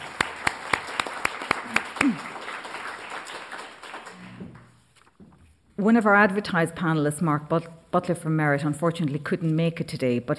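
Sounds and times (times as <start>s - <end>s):
crowd applause: 0.0s - 4.7s
speech: 5.8s - 10.3s.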